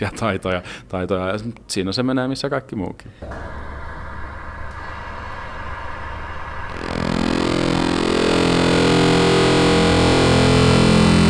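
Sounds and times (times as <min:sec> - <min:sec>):
speech: 0:00.0 - 0:03.7
laughter: 0:03.2 - 0:07.1
buzzy electronic synthesizer drone from synthesizer software on an electronic event badge: 0:03.2 - 0:11.2.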